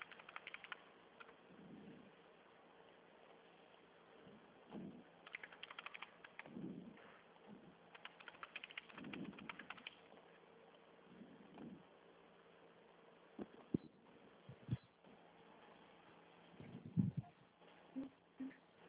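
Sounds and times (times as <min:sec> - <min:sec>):
typing on a computer keyboard: 0:00.0 - 0:01.4, 0:05.2 - 0:06.6, 0:07.9 - 0:10.1
low rumble: 0:00.0 - 0:18.8.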